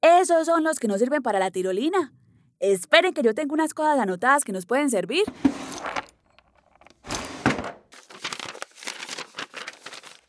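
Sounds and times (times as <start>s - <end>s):
speech: 0.2s - 6.0s
papers of notes rustling and crinkling: 5.8s - 7.3s, 8.0s - 10.2s.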